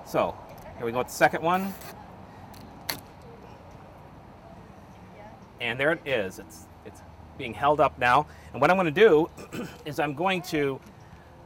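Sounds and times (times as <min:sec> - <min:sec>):
speech: 0:00.1 - 0:01.9, 0:05.6 - 0:11.0
zip tie pulled tight: 0:01.5 - 0:02.0.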